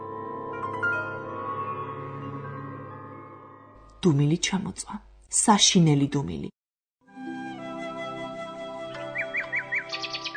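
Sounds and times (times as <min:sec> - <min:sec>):
sustained tonal music: 0:00.0 - 0:04.2, 0:07.0 - 0:10.3
speech: 0:04.0 - 0:06.6
nightingale singing: 0:09.0 - 0:10.3.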